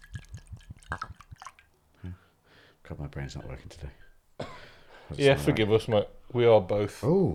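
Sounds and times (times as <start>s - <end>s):
rum glugging as poured from bottle: 0.0s - 1.8s
speech: 2.9s - 4.1s, 5.1s - 7.3s.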